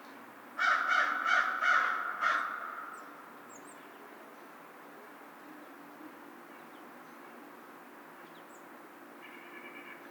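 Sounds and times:
American crow cawing: 0:00.6 - 0:03.0, 0:09.2 - 0:10.0.

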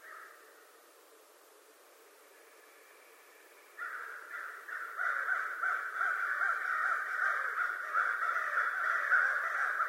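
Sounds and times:
American crow cawing: 0:00.0 - 0:00.4, 0:03.8 - 0:09.8.

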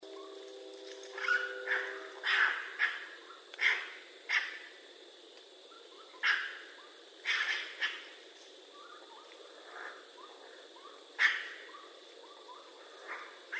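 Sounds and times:
faint chirps: 0:00.0 - 0:13.5
raccoon calls: 0:01.1 - 0:04.8, 0:05.7 - 0:08.2, 0:08.8 - 0:13.5.

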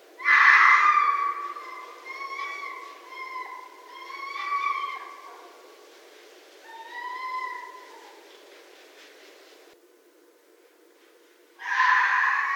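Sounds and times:
red fox cries: 0:00.2 - 0:05.6, 0:06.6 - 0:08.2, 0:11.6 - 0:12.5.

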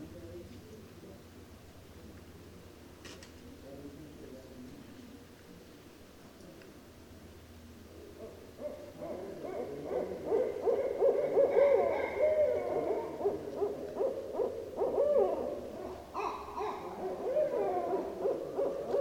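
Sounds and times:
barred owl hooting and cackling: 0:08.7 - 0:18.9.

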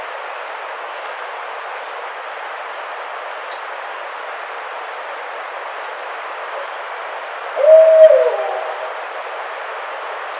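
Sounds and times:
Barred owl hooting: 0:07.6 - 0:09.2
soft background hiss: 0:07.6 - 0:09.2.

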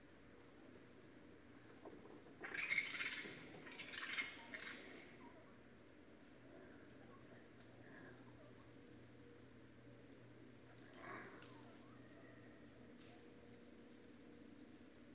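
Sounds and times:
low steady hum: 0:00.0 - 0:15.1
raccoon squealing: 0:02.4 - 0:05.0.

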